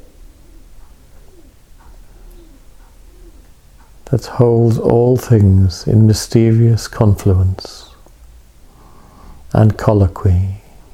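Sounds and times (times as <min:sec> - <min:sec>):
doves cooing: 0:00.0 - 0:05.3
hiss: 0:00.0 - 0:10.9
speech: 0:04.1 - 0:07.9, 0:09.6 - 0:10.6.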